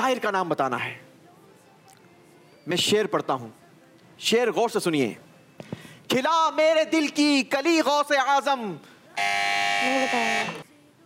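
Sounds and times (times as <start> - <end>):
speech: 0.1 - 1.0, 2.6 - 3.6, 4.2 - 10.6
quiz show buzzer pressed during a poetry verse contest: 9.2 - 10.6.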